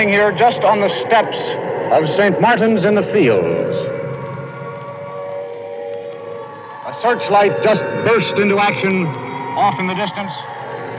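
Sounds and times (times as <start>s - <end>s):
speech: 0.0s - 3.9s, 6.9s - 10.5s
air raid sirens wailing: 0.0s - 10.9s.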